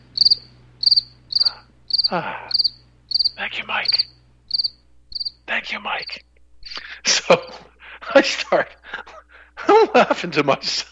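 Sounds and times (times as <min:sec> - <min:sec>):
crickets chirping: 0:00.0 - 0:06.2
low hum: 0:00.0 - 0:08.0
speech: 0:02.1 - 0:02.5, 0:03.5 - 0:04.0, 0:05.7 - 0:06.3, 0:07.3 - 0:08.8, 0:09.8 - 0:10.9.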